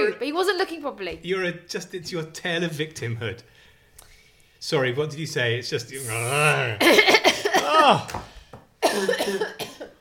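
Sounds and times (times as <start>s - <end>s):
speech: 0.0s - 3.6s, 4.6s - 8.3s, 8.9s - 9.9s
person coughing loudly: 6.8s - 8.1s, 8.8s - 9.9s.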